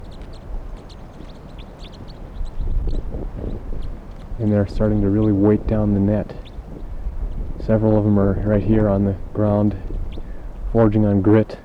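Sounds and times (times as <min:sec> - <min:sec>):
huge flock of wild birds chirping: 0:00.0 - 0:11.6
steady low rumble: 0:02.7 - 0:11.6
speech: 0:04.4 - 0:06.4, 0:07.7 - 0:10.0, 0:10.7 - 0:11.6.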